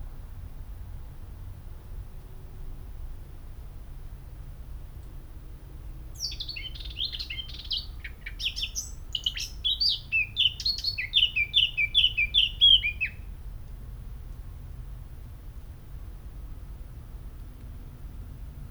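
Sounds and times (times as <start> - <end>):
Eurasian blackcap Sylvia atricapilla twittering song: 6.2 - 13.2.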